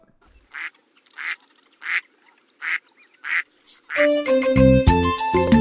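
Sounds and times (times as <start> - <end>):
duck quacking: 0.5 - 4.0
speech: 4.0 - 5.5.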